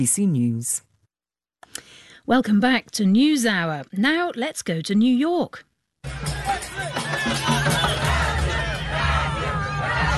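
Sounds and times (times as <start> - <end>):
speech: 0.0 - 0.9, 1.7 - 7.0
Brazilian football fans crowd cheering in Times Square, New York: 6.1 - 10.1.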